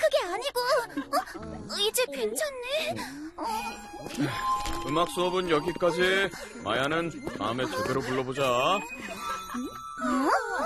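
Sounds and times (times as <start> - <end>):
speech: 0.3 - 10.6
bell chime with a warped wobbling off-key pitch: 3.4 - 10.6.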